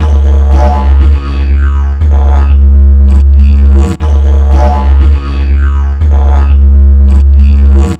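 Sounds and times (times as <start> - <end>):
dig loop of ethnic instruments: 0.0 - 7.9.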